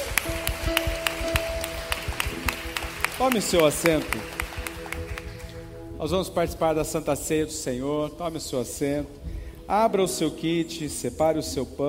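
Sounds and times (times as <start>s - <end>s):
audience clapping in a steady rhythm: 0.0s - 5.8s
sustained musical tones: 0.0s - 11.8s
speech: 3.2s - 4.4s, 6.0s - 11.8s.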